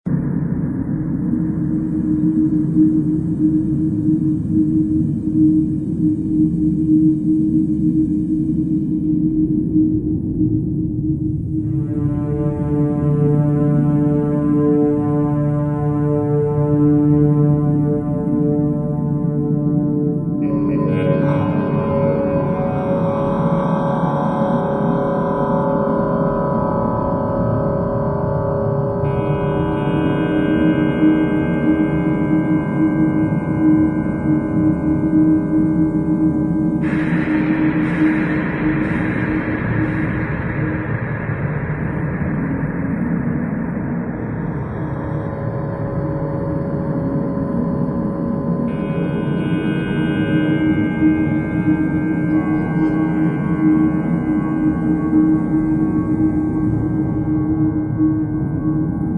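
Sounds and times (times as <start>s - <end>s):
ambience: 0.1s - 59.1s.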